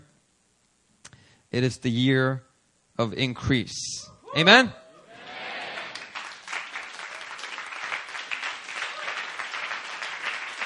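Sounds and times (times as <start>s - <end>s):
speech: 1.5s - 4.8s
audience clapping in sustained steady applause: 5.6s - 10.6s.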